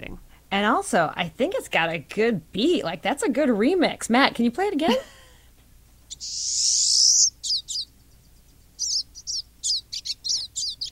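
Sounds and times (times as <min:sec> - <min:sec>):
speech: 0:00.5 - 0:05.2, 0:06.2 - 0:07.2
pine siskin long buzzy rising wheeze: 0:06.1 - 0:07.9, 0:08.8 - 0:10.9
pine siskin quick twittering chirps: 0:06.1 - 0:10.9.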